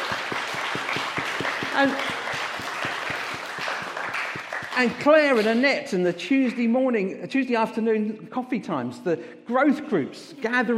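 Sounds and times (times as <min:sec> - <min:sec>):
room full of people clapping: 0:00.0 - 0:05.4
speech: 0:01.8 - 0:02.2, 0:04.8 - 0:10.7.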